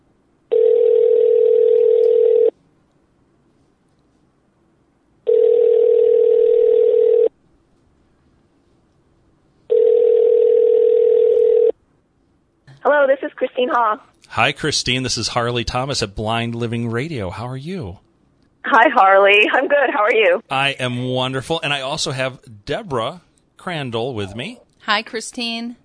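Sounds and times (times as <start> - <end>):
telephone line tone as a phone call is placed: 0.5 - 2.5, 5.3 - 7.3, 9.7 - 11.8
speech: 12.8 - 25.8.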